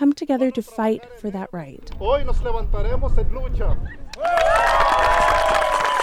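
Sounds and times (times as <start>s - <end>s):
speech: 0.2s - 4.9s
crowd at a tribal community meeting applauding: 4.1s - 6.0s.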